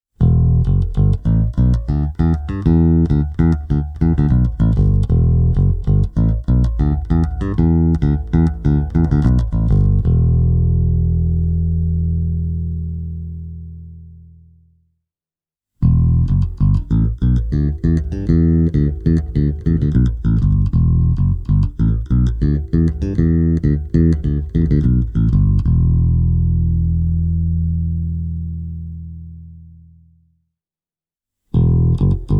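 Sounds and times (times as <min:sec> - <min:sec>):
electric bass through an Ashdown combo amplifier: 0:00.2 - 0:14.6, 0:15.8 - 0:30.2, 0:31.6 - 0:32.3.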